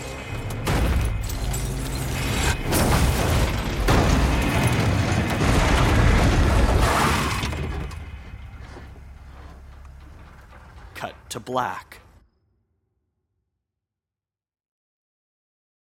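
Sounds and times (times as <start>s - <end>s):
car crashing as it tumbles down a hill: 0.5s - 11.0s
car sliding on its roof with grinding scrape: 6.5s - 10.9s
speech: 11.4s - 12.0s.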